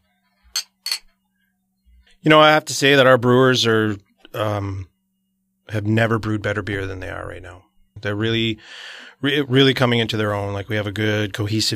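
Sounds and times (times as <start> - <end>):
glasses of strawberry peppercorn saison beer clinking in a toast: 0.6 - 1.1
speech: 2.2 - 4.9, 5.7 - 11.7.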